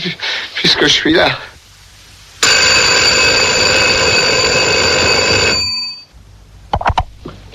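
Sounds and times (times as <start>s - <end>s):
speech: 0.0s - 1.5s
telephone ringing: 2.4s - 6.1s.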